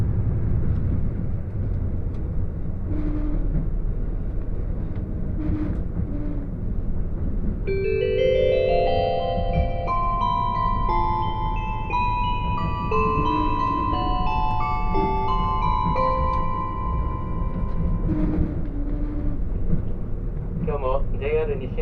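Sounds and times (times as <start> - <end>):
KiHa 85 limited express train wheels and engine rumble on mountain line: 0.0 - 21.8
bright melody of stepped tones: 7.7 - 18.4.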